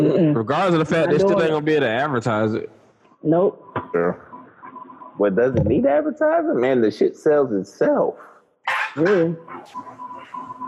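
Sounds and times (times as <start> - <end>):
speech: 0.1 - 4.3, 5.2 - 10.6
dog barking: 8.7 - 9.0.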